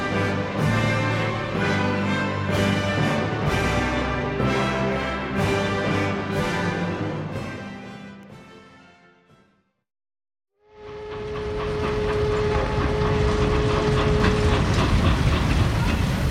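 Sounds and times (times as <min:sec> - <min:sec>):
train pulling into a station: 0:00.0 - 0:07.2, 0:10.6 - 0:16.2.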